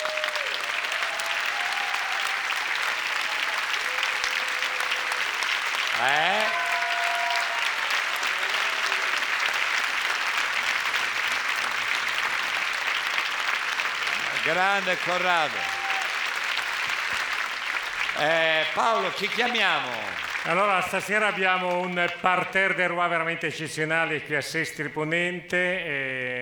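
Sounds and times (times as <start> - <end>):
faint whistles or cheers from the audience: 0.0 - 9.3, 15.1 - 16.4
large audience applause in Sestri Ponente: 0.0 - 22.6
speech: 6.0 - 6.2, 14.5 - 15.8, 18.2 - 26.4.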